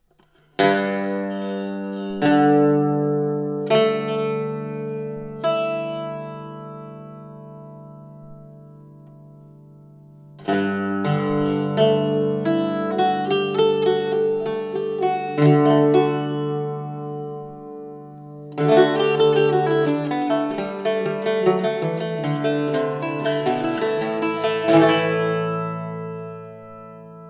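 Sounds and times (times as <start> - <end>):
bouzouki playing: 0.2 - 27.2.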